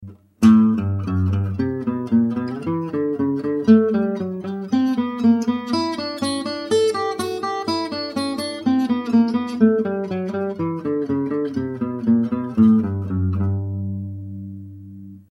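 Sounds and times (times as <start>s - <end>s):
low to high guitar arpeggio: 0.0s - 15.2s.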